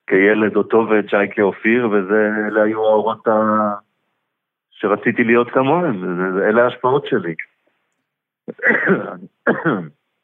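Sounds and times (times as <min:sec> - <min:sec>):
speech: 0:00.1 - 0:03.8, 0:04.8 - 0:07.5, 0:08.5 - 0:10.0
person coughing: 0:08.5 - 0:10.0.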